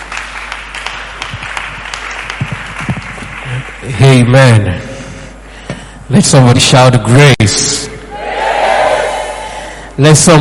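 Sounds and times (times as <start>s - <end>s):
church audience applause at a service: 0.0s - 3.8s
speech: 3.9s - 4.9s, 6.1s - 8.0s, 10.0s - 10.3s.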